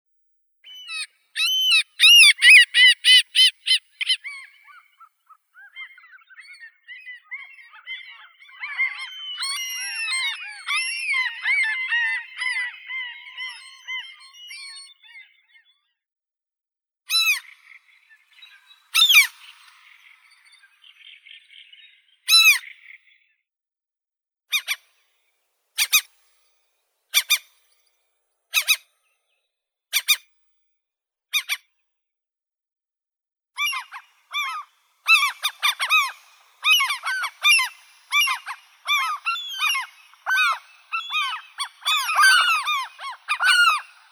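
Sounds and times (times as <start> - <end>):
common gull Larus canus: 0.7 - 15.8, 17.1 - 20.9, 22.3 - 22.8, 24.5 - 24.9, 28.6 - 28.9, 31.4 - 31.7, 33.6 - 44.1.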